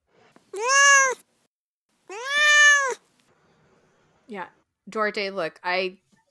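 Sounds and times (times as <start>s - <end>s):
pet cat meowing: 0.5s - 1.2s, 2.1s - 3.0s
speech: 4.3s - 6.0s.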